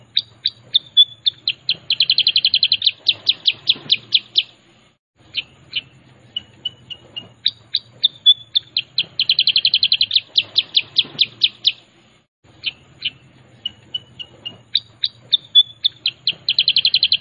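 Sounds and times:
sooty-headed bulbul song: 0.0 - 17.1.

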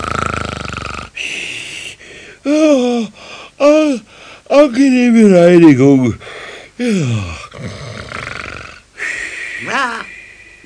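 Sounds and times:
snoring: 0.0 - 1.2, 7.2 - 8.8
speech: 2.5 - 7.8.

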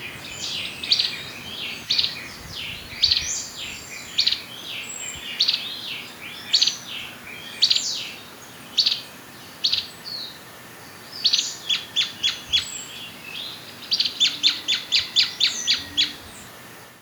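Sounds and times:
black-crested warbler Myiothlypis nigrocristata calling with chip notes: 0.0 - 16.4
faint low cooing: 14.2 - 16.6.

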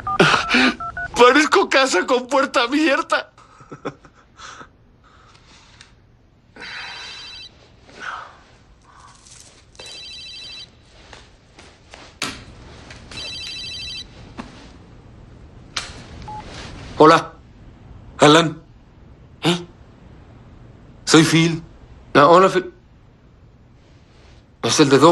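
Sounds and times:
mobile phone ringing: 0.0 - 1.2, 6.9 - 7.6, 9.8 - 10.8, 13.1 - 14.2
speech: 0.2 - 4.0, 17.0 - 17.3, 18.2 - 18.6, 19.4 - 19.7, 21.1 - 22.7, 24.6 - 25.1.

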